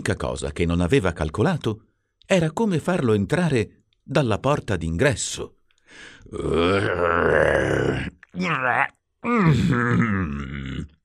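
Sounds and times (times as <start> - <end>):
speech: 0.0 - 11.0
person grunting and groaning with strain while dragging a heavy tree: 6.2 - 11.0.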